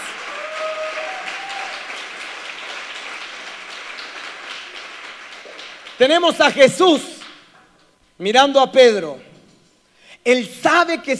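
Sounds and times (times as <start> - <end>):
audience applause: 0.0 - 6.2
speech: 6.0 - 7.1, 8.2 - 9.3, 10.2 - 11.1.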